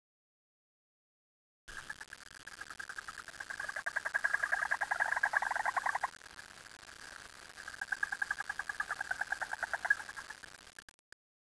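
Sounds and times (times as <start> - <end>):
frog calling in rapid pulsed rattling trills: 1.7 - 10.9.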